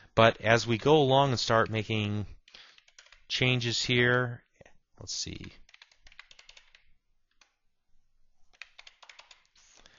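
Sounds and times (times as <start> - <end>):
speech: 0.2 - 2.4, 3.3 - 4.4, 5.0 - 5.6
keyboard typing in a database application: 2.4 - 3.3, 5.5 - 7.6, 8.5 - 9.8.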